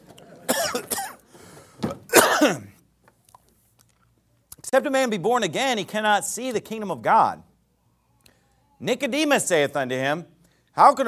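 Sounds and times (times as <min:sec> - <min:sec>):
throat clearing: 0:00.5 - 0:01.2, 0:02.1 - 0:02.8
person coughing harshly: 0:00.5 - 0:01.3, 0:02.1 - 0:02.8
speech: 0:04.7 - 0:07.5, 0:08.8 - 0:11.0.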